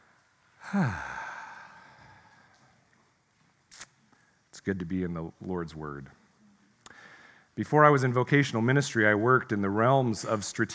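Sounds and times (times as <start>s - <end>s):
church congregation breathing out together during a morning service: 0.6s - 2.5s
speech: 0.7s - 1.1s, 4.6s - 6.2s, 7.6s - 10.7s.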